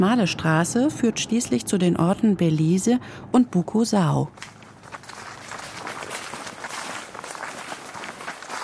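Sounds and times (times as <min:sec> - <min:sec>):
speech: 0:00.0 - 0:04.6
leaves and undergrowth rustling in the Mayombe rainforest: 0:04.3 - 0:08.6
man's footsteps in flip-flops on a rainforest footpath: 0:04.4 - 0:08.6.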